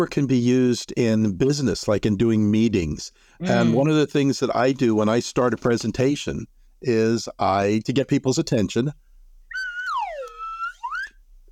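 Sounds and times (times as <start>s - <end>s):
speech: 0.0s - 9.1s
slide whistle blown at the start of a presentation: 9.5s - 11.2s.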